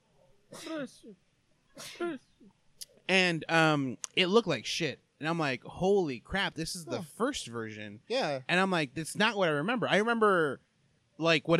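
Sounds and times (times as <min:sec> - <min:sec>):
speech: 0:00.5 - 0:11.5
sneezes: 0:00.6 - 0:00.9, 0:01.8 - 0:02.2.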